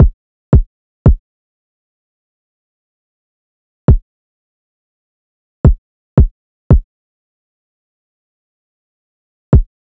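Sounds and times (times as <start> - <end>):
kick drum loop at 85 BPM: 0.0 - 1.2, 5.7 - 6.8.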